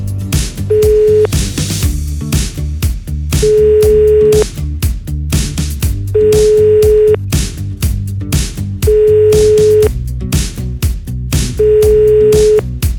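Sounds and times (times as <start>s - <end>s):
continuous music bed: 0.0s - 12.9s
ringback tones from an outgoing phone call: 3.5s - 4.4s, 6.2s - 7.2s, 8.9s - 9.9s, 11.6s - 12.6s.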